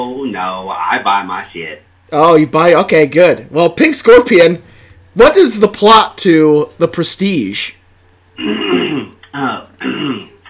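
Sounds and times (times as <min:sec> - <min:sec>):
speech: 0:00.0 - 0:07.8, 0:08.4 - 0:08.6, 0:09.3 - 0:10.4
throat clearing and coughing: 0:08.4 - 0:10.4.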